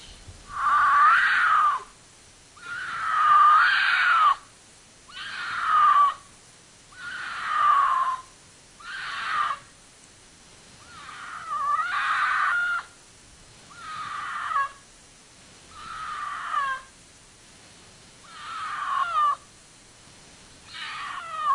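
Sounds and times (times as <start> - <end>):
cougar screaming at night: 0.5 - 2.0, 2.6 - 4.5, 5.1 - 6.3, 6.9 - 9.7, 10.8 - 13.0, 13.7 - 14.8, 15.7 - 16.9, 18.2 - 19.5, 20.7 - 21.5.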